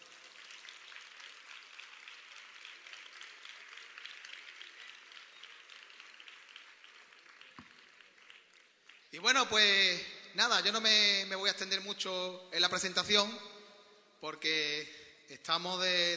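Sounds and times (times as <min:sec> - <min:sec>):
crowd applauding for the technicians: 0:00.0 - 0:09.7
speech: 0:09.2 - 0:13.5, 0:14.2 - 0:16.1.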